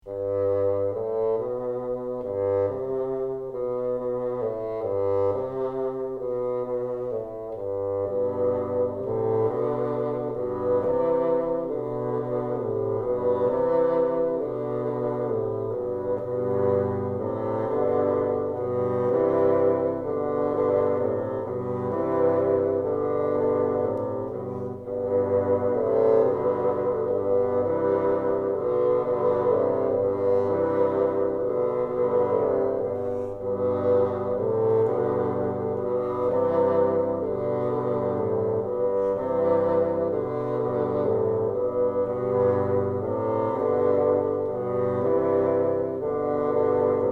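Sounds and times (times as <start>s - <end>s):
bassoon trio playing: 0.0s - 47.1s.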